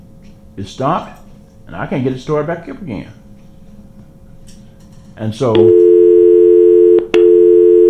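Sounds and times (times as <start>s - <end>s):
speech: 0.6s - 3.2s, 5.2s - 5.8s
telephone busy tone on a call-in line: 5.6s - 7.8s.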